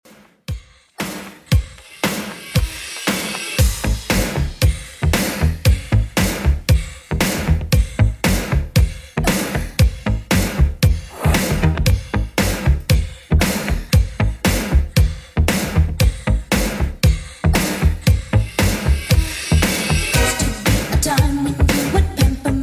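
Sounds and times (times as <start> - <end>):
80s Redrum drum beat at 116 bpm: 0.1 - 22.4.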